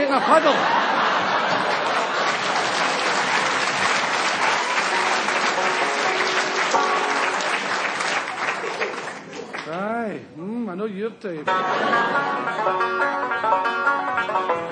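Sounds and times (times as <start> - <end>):
laughter: 0.0 - 9.6, 11.4 - 13.1
speech: 0.1 - 0.8, 10.1 - 14.6
audience clapping: 0.8 - 9.9
audience stamping feet: 1.2 - 9.3.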